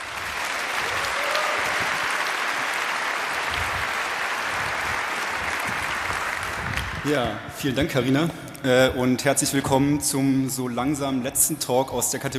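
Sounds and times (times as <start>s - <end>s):
sustained applause from a sizable audience: 0.0s - 7.2s
speech: 7.0s - 12.3s.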